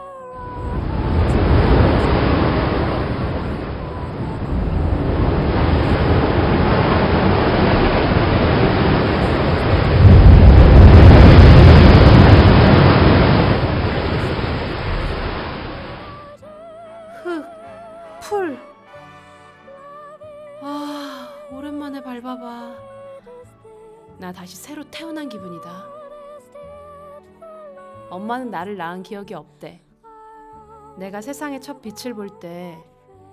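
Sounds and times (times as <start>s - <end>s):
faint scattered tonal sounds: 0.0s - 33.3s
loud ocean waves roaring and crashing: 0.4s - 16.4s
speech: 28.1s - 29.8s, 31.0s - 32.9s.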